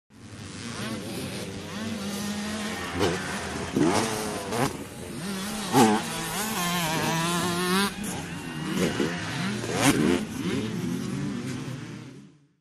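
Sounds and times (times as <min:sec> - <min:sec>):
motocross bike jumping and passing by: 0:00.1 - 0:12.5.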